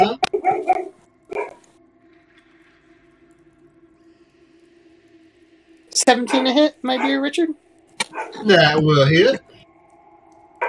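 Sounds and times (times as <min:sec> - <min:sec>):
dog barking in the background: 0:00.3 - 0:01.6, 0:06.3 - 0:07.3, 0:08.0 - 0:08.5
speech: 0:06.0 - 0:07.6, 0:08.2 - 0:09.5.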